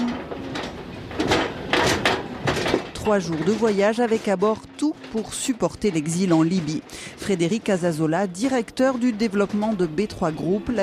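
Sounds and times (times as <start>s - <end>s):
Prim'Holstein dairy heifer hooves clattering on a metal gangway in the port of Sète: 0.0s - 6.7s
speech: 3.1s - 10.8s.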